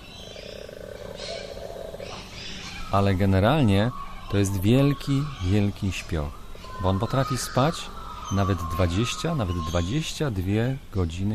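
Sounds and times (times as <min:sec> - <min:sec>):
koala purring: 0:00.2 - 0:02.9
speech: 0:02.9 - 0:11.3.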